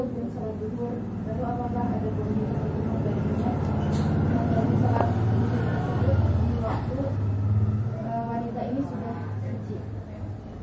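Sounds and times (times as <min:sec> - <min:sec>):
indistinct talking: 0:00.0 - 0:10.6
motorcycle engine rumbling as it passes: 0:01.2 - 0:08.5.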